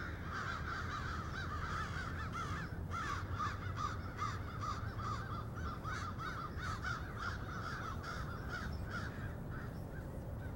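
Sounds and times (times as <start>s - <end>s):
crows cawing in Cincinnati: 0.0s - 10.5s
steady low hum: 0.0s - 10.5s.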